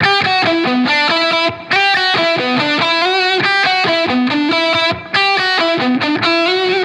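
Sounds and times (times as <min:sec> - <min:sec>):
rage guitar melody loop in E minor: 0:00.0 - 0:06.8.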